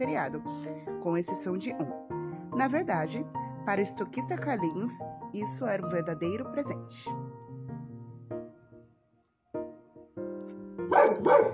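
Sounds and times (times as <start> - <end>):
speech: 0.0 - 7.2, 11.1 - 11.5
dog barking: 10.9 - 11.5.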